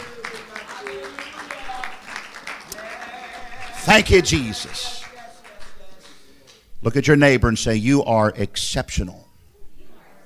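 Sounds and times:
audience clapping hands in applause: 0:00.0 - 0:06.7
scattered voices calling and shouting: 0:02.7 - 0:05.4
speech: 0:03.9 - 0:05.0, 0:06.8 - 0:09.2.

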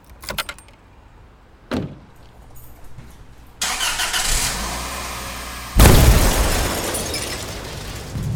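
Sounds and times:
car door: 0:00.0 - 0:00.8, 0:01.7 - 0:03.9
keys jingling: 0:00.0 - 0:00.9, 0:01.7 - 0:04.0
car windshield shattering with breaking glass: 0:05.8 - 0:08.2.

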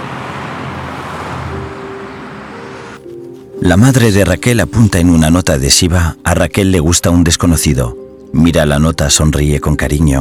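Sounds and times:
ambulance engine and road noise driving through city streets: 0:00.0 - 0:05.0
speech: 0:03.6 - 0:10.1.

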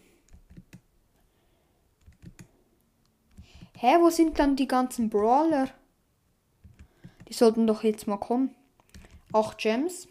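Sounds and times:
computer keyboard typing: 0:00.3 - 0:00.8, 0:02.0 - 0:02.5, 0:03.3 - 0:04.0, 0:06.6 - 0:07.4, 0:08.8 - 0:09.7
speech: 0:03.8 - 0:05.8, 0:07.4 - 0:08.6, 0:09.3 - 0:10.0.

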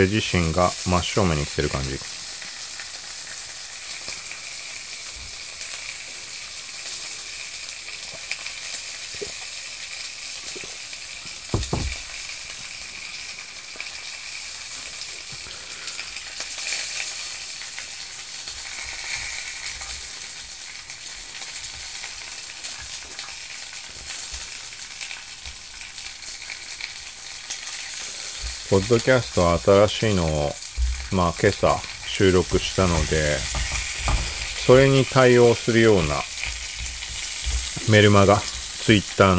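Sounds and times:
speech: 0:00.0 - 0:02.2, 0:28.8 - 0:33.6, 0:34.7 - 0:36.3, 0:37.9 - 0:39.3
pork belly sizzling in a frying pan: 0:00.0 - 0:39.3
low knocks: 0:11.5 - 0:12.2.

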